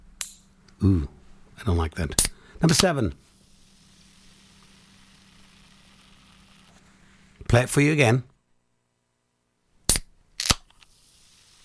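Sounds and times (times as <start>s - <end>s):
speech: 0.8s - 3.3s, 7.5s - 8.3s
aluminium can being opened: 9.9s - 10.9s.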